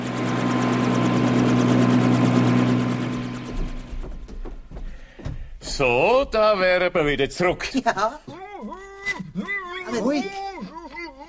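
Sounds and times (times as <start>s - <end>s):
aircraft engine droning while flying back to base: 0.0s - 4.6s
faint knocks: 3.5s - 5.6s
speech: 5.8s - 8.4s, 9.4s - 10.4s.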